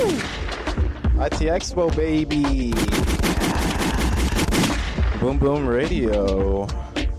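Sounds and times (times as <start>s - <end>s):
rapid gunshot sound effects: 0.0s - 0.9s, 2.6s - 5.6s
speech: 1.2s - 3.6s, 5.2s - 7.0s.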